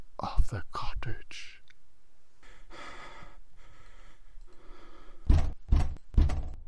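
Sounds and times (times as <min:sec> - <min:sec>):
speech: 0:00.5 - 0:01.6
heavy knocks on a wooden cottage door: 0:05.3 - 0:06.6.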